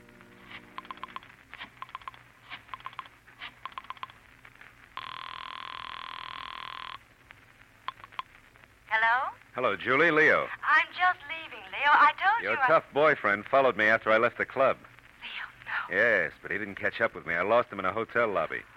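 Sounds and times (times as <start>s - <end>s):
telephone ringing: 0.5s - 4.2s, 5.0s - 7.0s
telephone being dialed in an apartment: 0.8s - 4.1s
speech: 9.3s - 14.9s, 15.9s - 18.7s.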